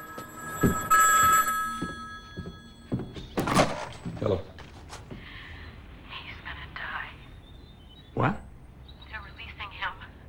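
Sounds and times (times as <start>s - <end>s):
telephone bell ringing inside a house: 0.0s - 3.4s
speech: 4.3s - 4.6s, 8.2s - 8.4s.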